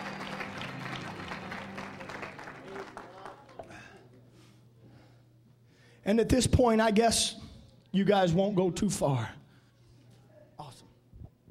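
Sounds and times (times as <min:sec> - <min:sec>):
seated audience clapping in praise at a morning church service: 0:00.0 - 0:03.9
speech: 0:06.1 - 0:09.4.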